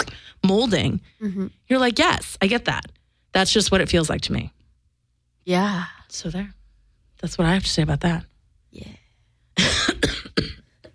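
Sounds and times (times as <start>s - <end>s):
speech: 0.5s - 4.6s, 5.4s - 6.6s, 7.2s - 9.0s
harsh breathy coughs: 9.6s - 10.9s.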